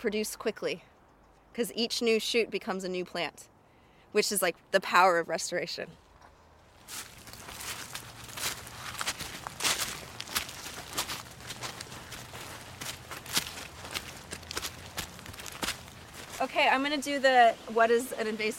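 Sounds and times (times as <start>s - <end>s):
speech: 0.0s - 0.9s, 1.6s - 3.5s, 4.1s - 6.0s, 6.9s - 7.1s, 16.5s - 18.5s
footsteps walking through a habitat of native plants: 6.7s - 17.1s.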